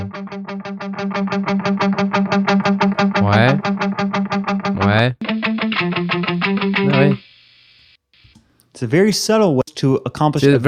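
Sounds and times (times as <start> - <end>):
mono electric guitar with reverb playing quickly repeated picked notes: 0.0 - 7.3
speech: 8.8 - 10.6.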